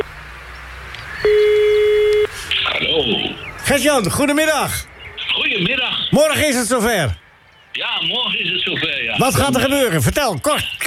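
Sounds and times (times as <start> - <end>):
telephone line hiss: 1.2 - 2.7
speech: 3.7 - 7.2, 7.8 - 10.8.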